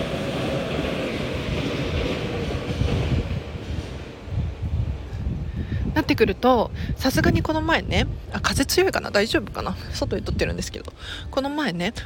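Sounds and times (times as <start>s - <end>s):
train rumbling past with wheel and rail noise: 0.0s - 12.0s
speech: 6.1s - 12.0s.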